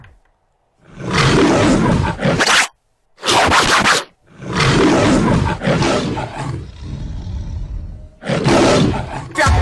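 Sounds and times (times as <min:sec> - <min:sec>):
lion roaring: 0:00.8 - 0:02.4, 0:04.2 - 0:09.5.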